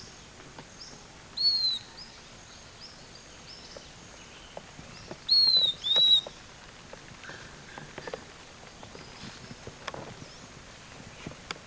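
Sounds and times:
faint background hiss: 0:00.0 - 0:11.6
bird calls with thin high whistles: 0:01.4 - 0:02.0, 0:05.3 - 0:06.3.

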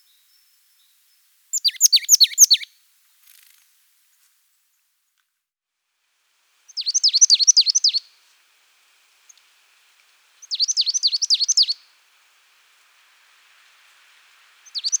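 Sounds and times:
marsh tit Parus palustris giving high sharp chattering notes: 0:01.6 - 0:02.7, 0:10.5 - 0:11.7, 0:14.7 - 0:14.9.

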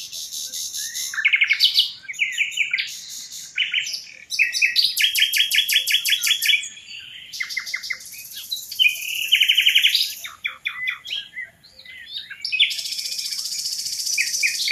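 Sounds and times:
common nightingale Luscinia megarhynchos singing: 0:00.0 - 0:14.7.

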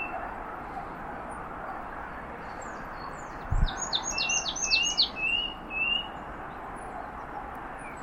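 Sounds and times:
steady background noise: 0:00.0 - 0:08.0
marsh tit Poecile palustris calls: 0:03.0 - 0:06.1.

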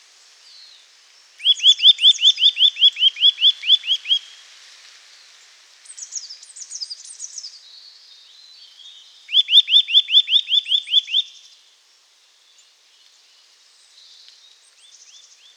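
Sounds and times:
Eurasian nuthatch giving loud clear arched notes and twittering chatter: 0:01.4 - 0:04.3, 0:09.3 - 0:11.4.

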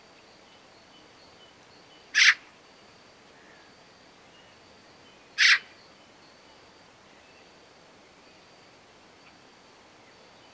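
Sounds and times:
faint background hiss: 0:00.0 - 0:10.5
Eurasian magpie Pica pica giving harsh chak calls: 0:02.2 - 0:02.4, 0:05.4 - 0:05.6.

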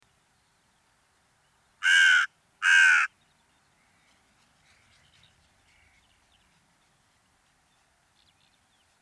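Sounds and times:
carrion crow cawing, Corvus corone: 0:01.8 - 0:03.1.

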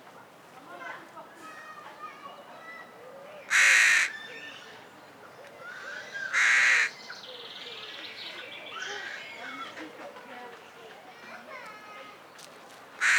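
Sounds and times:
carrion crow Corvus corone cawing: 0:03.5 - 0:04.2, 0:06.3 - 0:07.0, 0:13.0 - 0:13.1.

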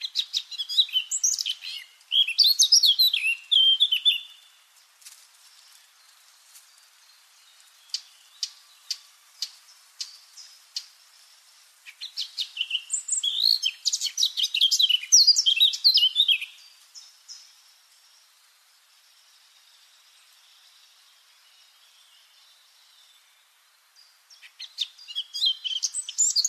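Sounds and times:
Eurasian blackcap Sylvia atricapilla warbling song: 0:00.0 - 0:04.7, 0:07.0 - 0:17.6, 0:24.0 - 0:26.4.

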